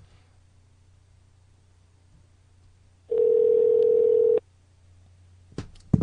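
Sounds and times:
long steady mid-pitched electronic telephone ring tone, unanswered call: 0:03.1 - 0:04.4.

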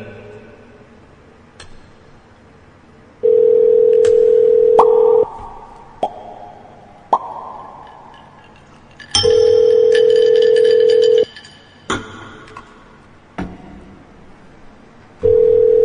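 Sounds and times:
ringback tone of an outgoing telephone call: 0:03.2 - 0:05.3, 0:09.2 - 0:11.3, 0:15.2 - 0:15.8.

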